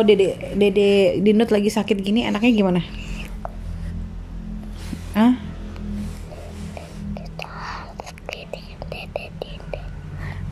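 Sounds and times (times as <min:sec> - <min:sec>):
speech: 0:00.0 - 0:03.0, 0:05.2 - 0:05.4
child whispering: 0:02.2 - 0:03.5, 0:06.3 - 0:10.4.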